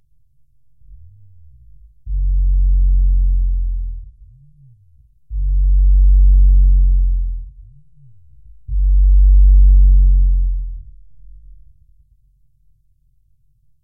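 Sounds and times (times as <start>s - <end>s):
redbrown chirp tone at 350 Hz: 1.0s - 11.6s.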